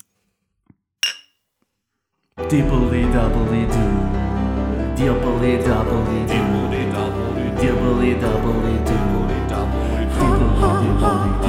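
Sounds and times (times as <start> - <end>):
glasses clinking in a toast: 1.0 - 1.3
speech: 2.4 - 4.1, 5.0 - 11.4.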